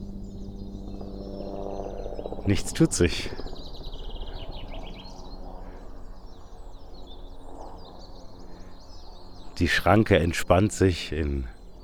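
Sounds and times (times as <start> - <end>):
steady low rumble of noise: 0.0 - 5.7
birds chirping outdoors at a railway level crossing: 0.0 - 11.8
speech: 2.4 - 3.5, 9.6 - 11.6.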